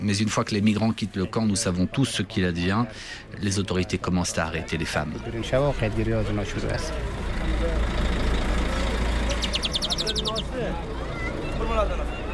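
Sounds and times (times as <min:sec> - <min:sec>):
speech: 0:00.0 - 0:08.1, 0:10.2 - 0:11.0, 0:11.6 - 0:12.2
crowd of voices chattering around a bus: 0:00.0 - 0:12.3
bus bound for Herat idling: 0:05.4 - 0:11.9
quick run of high electronic beeps: 0:09.3 - 0:10.4.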